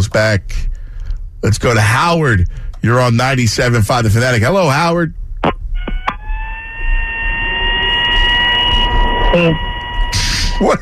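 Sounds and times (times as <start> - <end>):
speech: 0.1 - 0.7, 1.4 - 5.2, 9.3 - 9.7, 10.6 - 10.8
electronic alarm tone played over a phone line: 5.8 - 10.8.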